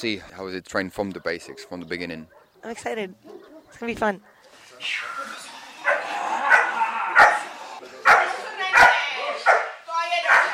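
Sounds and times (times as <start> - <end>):
speech: 0.0 - 5.3
protective dog barking fiercely at a threatening man: 2.3 - 4.4, 5.8 - 10.5.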